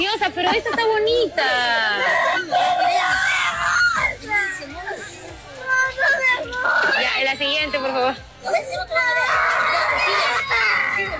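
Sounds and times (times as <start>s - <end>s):
speech: 0.0s - 2.8s, 6.6s - 11.1s
excited children shouting and screaming in a lively crowd: 1.9s - 11.1s.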